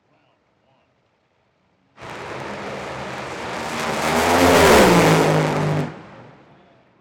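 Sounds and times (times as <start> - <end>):
top fuel dragster run at an NHRA drag race, heard from far end of racetrack: 2.0 - 6.6.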